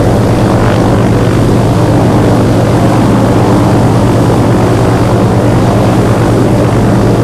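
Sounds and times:
C46 engines from the rear: 0:00.0 - 0:07.2.

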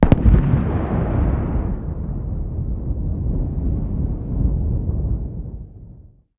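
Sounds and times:
distant explosion: 0:00.0 - 0:06.0.

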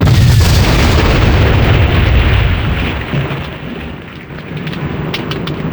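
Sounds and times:
napalm explosions: 0:00.0 - 0:05.6.

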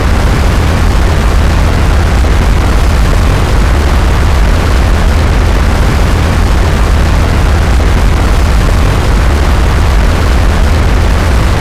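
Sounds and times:
aircraft engines with afterburner: 0:00.0 - 0:11.5.

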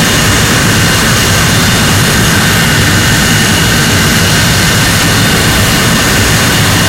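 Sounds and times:
jet engines: 0:00.0 - 0:06.8.

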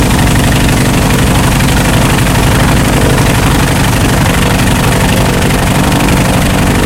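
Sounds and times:
engines: 0:00.0 - 0:06.8.

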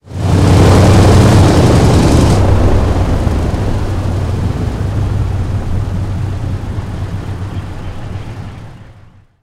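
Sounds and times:
C46 engine stopping heard in cockpit: 0:00.1 - 0:09.4.

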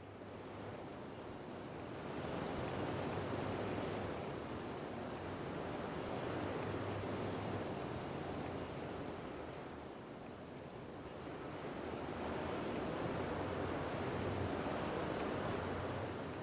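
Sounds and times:
ambient wind: 0:00.0 - 0:16.4.

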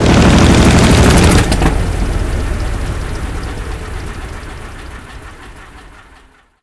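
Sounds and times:
engine stopping: 0:00.0 - 0:06.6.

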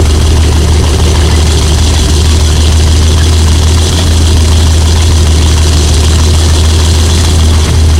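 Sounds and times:
tank engine running under load: 0:00.0 - 0:07.9.

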